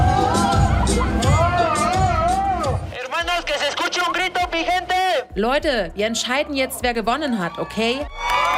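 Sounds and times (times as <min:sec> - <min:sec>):
subdued crowd murmuring: 0:00.0 - 0:02.9
scattered calls and half-hearted cheers: 0:00.0 - 0:05.3, 0:07.2 - 0:08.5
speech: 0:05.4 - 0:08.3.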